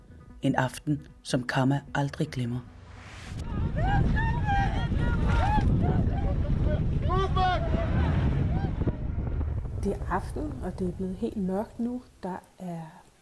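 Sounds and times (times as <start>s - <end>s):
speech: 0.4s - 2.8s, 9.8s - 13.0s
wind on the Mediterranean Sea: 2.8s - 13.2s.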